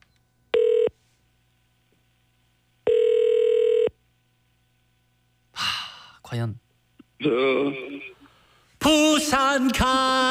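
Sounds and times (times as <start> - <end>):
outgoing telephone call electronic ringback tones: 0.5 - 0.9, 2.9 - 3.9
speech: 6.3 - 6.6, 7.2 - 8.2, 8.8 - 10.3.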